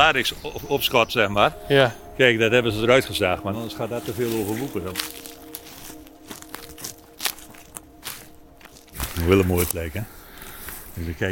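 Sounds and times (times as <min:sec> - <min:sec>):
speech: 0:00.1 - 0:05.3, 0:09.2 - 0:10.2, 0:11.0 - 0:11.3
twigs and debris crinkling underfoot: 0:02.8 - 0:11.3
footsteps crunching over leafy forest floor: 0:03.2 - 0:11.3.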